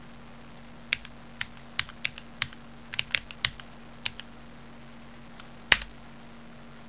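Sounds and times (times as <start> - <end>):
typing: 0.9 - 4.3.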